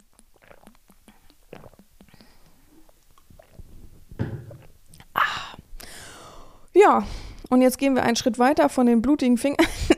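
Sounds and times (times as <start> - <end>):
stomach growling and gurgling: 0.0 - 5.7
speech: 6.8 - 9.9.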